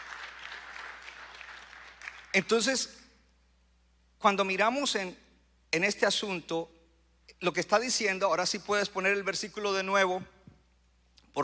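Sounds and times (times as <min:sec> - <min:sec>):
audience applause: 0:00.0 - 0:02.4
speech: 0:02.3 - 0:03.0, 0:04.2 - 0:10.4.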